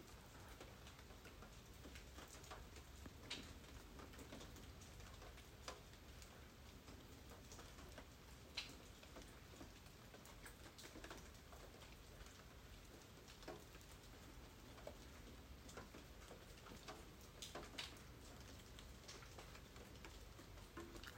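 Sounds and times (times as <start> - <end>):
steady soft rain falling: 0.0 - 21.1.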